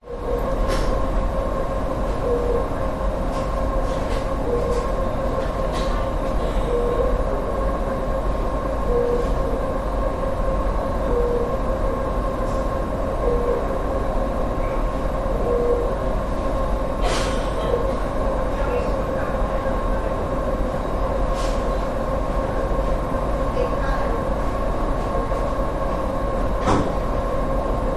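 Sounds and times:
hospital ward air conditioning hum whirr: 0.0s - 27.9s
beeps from a hospital ward monitor: 2.1s - 2.9s, 4.4s - 5.0s, 6.4s - 7.3s, 8.8s - 9.6s, 11.0s - 11.6s, 13.2s - 13.8s, 15.4s - 16.0s.

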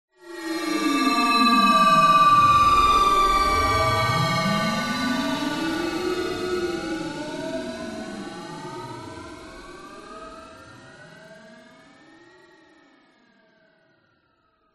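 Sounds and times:
descending metallic shrill FM tone with delay and reverb: 0.2s - 8.2s.

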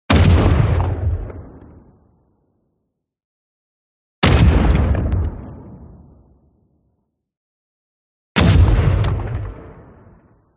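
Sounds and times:
light artillery weapons firing: 0.1s - 2.0s, 4.2s - 6.2s, 8.4s - 10.5s.

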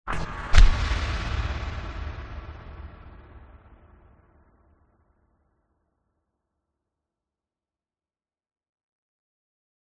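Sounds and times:
cinematic sound design boom: 0.1s - 4.5s
cinematic sound design hit: 0.1s - 4.5s.

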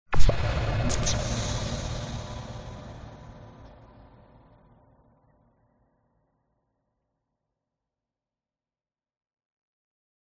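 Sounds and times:
loud scary cinematic hit with evolving tail: 0.1s - 5.2s.

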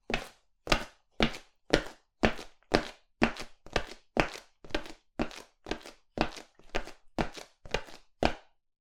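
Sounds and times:
male footsteps in boots on linoleum: 0.0s - 8.4s.

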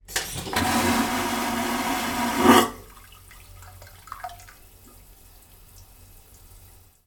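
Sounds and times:
toilet flushing on a ferry: 0.0s - 7.0s.

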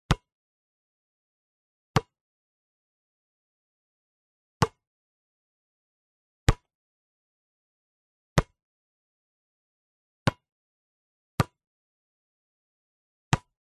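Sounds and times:
basketball bounced hard on asphalt concrete: 0.1s - 0.3s, 6.5s - 6.7s, 11.4s - 11.6s, 13.3s - 13.6s.

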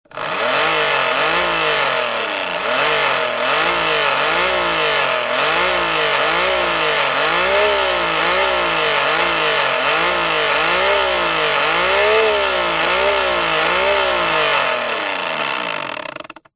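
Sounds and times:
powerful industrial handheld electric pump revving close to motor: 0.0s - 16.5s.

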